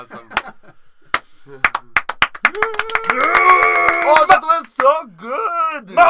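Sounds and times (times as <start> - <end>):
slow hand clapping: 1.1 - 5.0
speech: 1.5 - 1.7
people cheering: 2.4 - 4.7.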